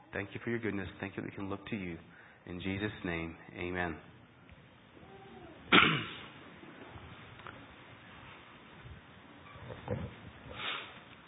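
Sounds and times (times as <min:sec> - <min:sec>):
low hum: 0:00.0 - 0:11.2
speech: 0:00.1 - 0:04.1
single sharp cough: 0:05.7 - 0:06.4.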